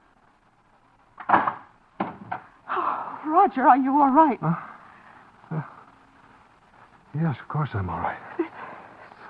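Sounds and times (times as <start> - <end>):
door knocking thuds as it swings and settles: 1.2 - 2.5
speech: 3.3 - 4.7, 5.5 - 5.7, 7.2 - 8.4.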